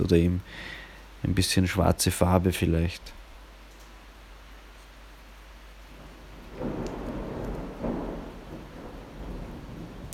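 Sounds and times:
speech: 0.0s - 3.2s
heavy rain: 0.0s - 10.1s
low thunder rumbling: 5.9s - 10.1s.

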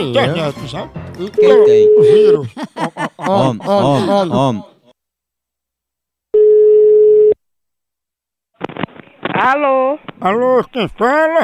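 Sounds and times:
speech: 0.0s - 4.7s, 9.4s - 11.4s
laughter: 0.0s - 5.0s, 10.2s - 11.4s
ringback tone of an outgoing telephone call to a home line: 1.4s - 2.3s, 6.4s - 7.4s.

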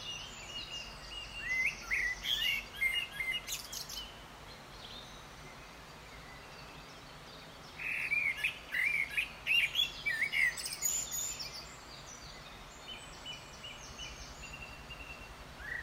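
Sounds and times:
male Eurasian blackcap singing at a nature reserve in the UK: 0.0s - 15.8s.

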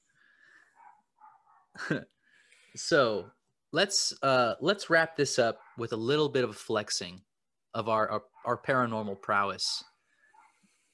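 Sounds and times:
dog barking excitedly: 0.8s - 1.7s, 5.5s - 5.8s, 8.4s - 8.6s
laughter: 1.8s - 2.1s
speech: 1.8s - 2.2s, 2.8s - 9.9s.

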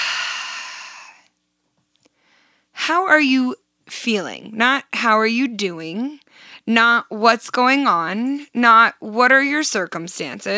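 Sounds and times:
deep breath in and out during a breathing exercise: 0.0s - 1.3s
speech: 2.9s - 10.5s.

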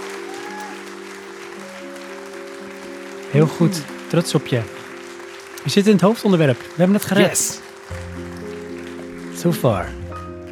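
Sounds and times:
crowd applause: 0.0s - 5.8s, 7.0s - 9.4s
speech: 3.3s - 4.8s, 5.6s - 8.0s, 9.4s - 10.0s.

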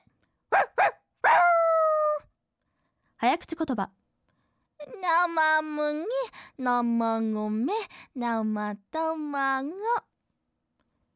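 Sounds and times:
voice-acting student imitating dog barks: 0.6s - 2.3s
speech: 3.2s - 4.0s, 5.0s - 10.1s.

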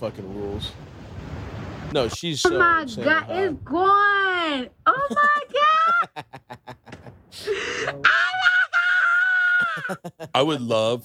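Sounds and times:
speech: 0.0s - 1.0s, 1.9s - 6.6s, 9.9s - 11.0s
laughter: 4.9s - 8.0s, 9.4s - 10.6s
woman screaming in excitement: 5.0s - 6.2s, 7.5s - 10.0s
woman gasping breathily: 7.3s - 8.0s.

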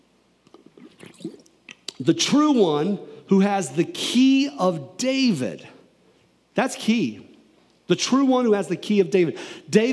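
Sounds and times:
sipping and swallowing water: 0.4s - 2.0s
speech: 2.0s - 5.7s, 6.6s - 7.3s, 7.9s - 9.9s.

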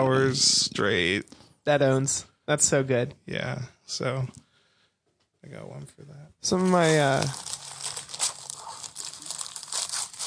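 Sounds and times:
speech: 0.0s - 4.4s, 5.4s - 7.6s
wrapping paper tearing and crinkling as a Christmas present is unwrapped: 6.5s - 10.2s.

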